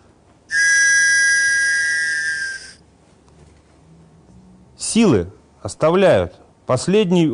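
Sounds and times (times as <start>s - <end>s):
loud steady whistle blast on one exhaled breath: 0.5s - 2.8s
speech: 4.9s - 7.3s.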